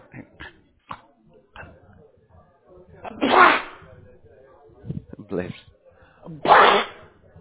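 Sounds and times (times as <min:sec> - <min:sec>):
loud sneezes: 0:03.0 - 0:03.8, 0:06.4 - 0:07.2
speech: 0:05.4 - 0:05.6.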